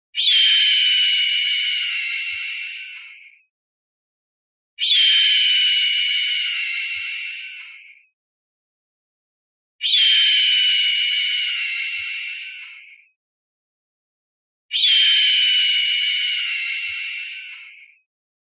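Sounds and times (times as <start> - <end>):
hawk screaming: 0.2 - 3.0, 4.8 - 7.6, 9.8 - 12.6, 14.7 - 17.7.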